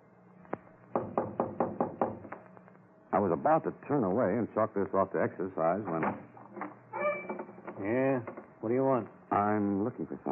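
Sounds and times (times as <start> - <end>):
knocking on a front door: 0.9 - 2.3
speech: 3.2 - 6.3, 7.8 - 10.2.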